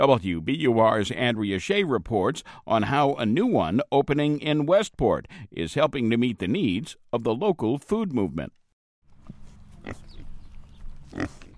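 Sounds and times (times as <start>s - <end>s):
speech: 0.0s - 8.6s, 9.8s - 10.2s, 11.1s - 11.4s
pigs grunting and oinking on a pasture-raised livestock farm: 9.8s - 10.4s, 11.0s - 11.5s.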